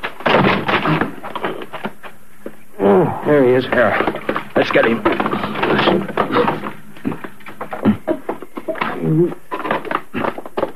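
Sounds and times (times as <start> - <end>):
side door being forced open with cracking thuds and splintering bangs: 0.0 - 1.5, 3.6 - 9.1
smaller knocks and rattles: 0.0 - 2.1, 3.5 - 10.7
speech: 3.2 - 6.1, 9.1 - 9.4.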